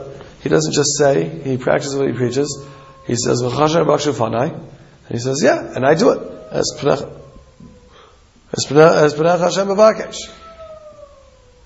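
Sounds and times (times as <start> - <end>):
speech: 0.4 - 7.2, 8.5 - 10.4
coyote howling: 1.8 - 4.7, 5.3 - 11.6.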